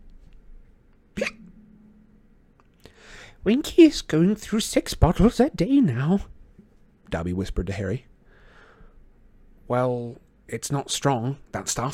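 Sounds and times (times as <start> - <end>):
low hum: 0.0 - 11.9
female house-elf hiccuping: 1.2 - 1.5
speech: 3.4 - 6.3, 7.1 - 8.1, 9.7 - 11.9.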